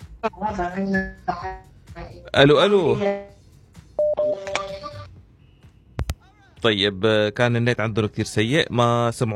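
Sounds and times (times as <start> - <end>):
speech: 0.2 - 3.3, 6.6 - 9.3
telephone number dialled in touch-tone beeps: 4.0 - 5.1.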